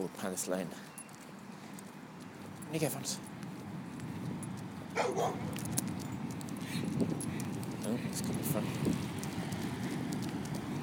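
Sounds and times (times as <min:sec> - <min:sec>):
speech: 0:00.0 - 0:01.0, 0:02.7 - 0:03.3, 0:05.0 - 0:05.8, 0:07.9 - 0:09.1
outdoor noise on a riverside towpath: 0:00.0 - 0:10.8
dog barking: 0:05.0 - 0:05.6.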